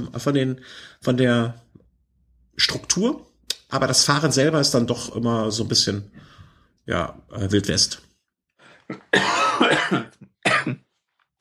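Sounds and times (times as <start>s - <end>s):
speech: 0.0s - 1.6s, 2.6s - 8.1s, 8.9s - 10.8s
person coughing: 8.9s - 10.9s.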